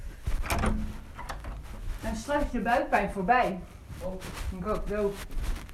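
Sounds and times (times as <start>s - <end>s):
door scraping as it swings open: 0.4s - 1.8s
speech: 2.1s - 5.5s.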